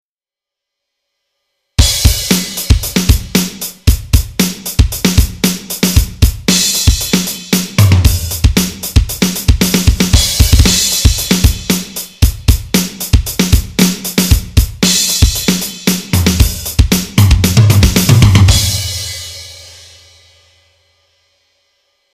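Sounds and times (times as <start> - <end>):
normal drum: 1.8 - 20.2.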